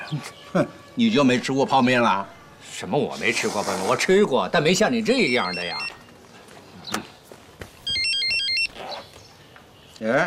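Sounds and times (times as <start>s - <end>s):
speech: 0.1s - 6.0s, 10.0s - 10.2s
mobile phone ringtone for incoming call: 4.9s - 6.0s, 7.8s - 8.8s.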